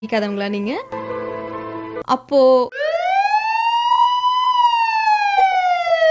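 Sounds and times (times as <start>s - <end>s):
speech: 0.0s - 1.1s, 2.0s - 2.8s
emergency vehicle siren wailing: 2.7s - 6.0s.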